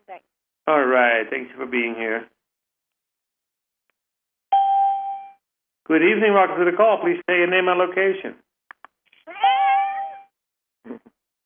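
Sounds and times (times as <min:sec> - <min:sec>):
speech: 0:00.2 - 0:02.3, 0:05.9 - 0:08.4
cat meowing: 0:09.3 - 0:10.3.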